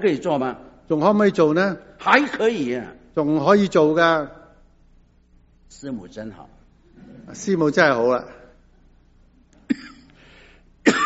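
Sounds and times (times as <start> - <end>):
speech: 0.0 - 4.4, 5.7 - 8.4
person coughing: 9.6 - 10.2, 10.8 - 11.0.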